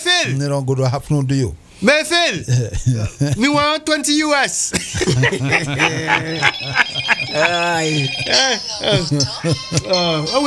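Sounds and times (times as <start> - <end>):
speech: 0.2 - 10.4
laughter: 2.5 - 3.7, 4.8 - 10.4
loud overlapping voices talking: 5.0 - 10.4
telephone ringing with a steady electronic trill: 5.0 - 10.4.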